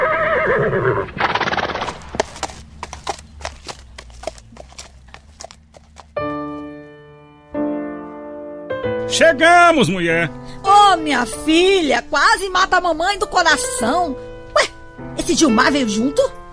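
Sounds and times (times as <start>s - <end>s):
mare whinnying: 0.0s - 6.0s
hooves clip-clopping: 1.7s - 6.7s
speech: 9.2s - 14.3s, 15.2s - 16.4s.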